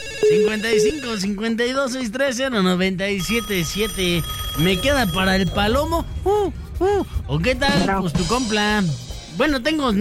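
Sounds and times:
telephone melodic ringtone for an incoming call: 0.0s - 1.4s, 3.2s - 6.1s
speech: 0.2s - 9.9s.

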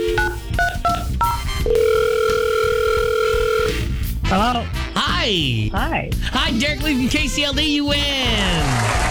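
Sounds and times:
short electronic beeps on a phone line: 0.0s - 1.5s
long steady telephone ringing tone: 0.0s - 3.9s
speech: 4.3s - 9.0s.

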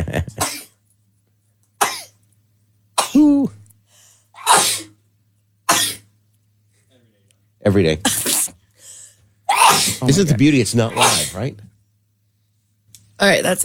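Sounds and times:
person sneezing in a fit: 3.0s - 3.6s, 4.4s - 5.0s, 8.1s - 8.6s, 9.5s - 10.1s, 10.9s - 11.4s
quiet inhales: 3.8s - 4.4s, 8.7s - 9.3s
speech: 7.7s - 8.2s, 10.0s - 11.7s, 13.2s - 13.6s.

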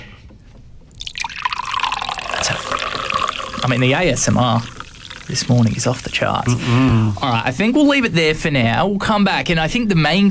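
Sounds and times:
fizzy drink poured into a glass: 1.0s - 7.4s
bright crackling fizz of a fizzy drink: 1.0s - 7.6s
speech: 3.7s - 10.2s.

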